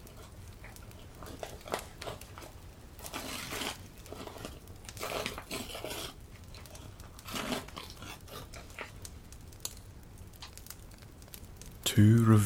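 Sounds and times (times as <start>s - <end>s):
Prussian blue wrapping paper rustling, crinkling and tearing: 3.0s - 8.9s
speech: 12.0s - 12.4s.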